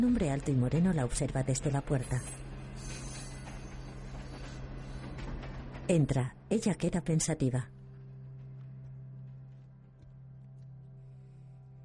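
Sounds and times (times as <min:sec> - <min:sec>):
speech: 0:00.0 - 0:02.9, 0:05.9 - 0:07.8
train passing along a railway track: 0:00.0 - 0:08.6.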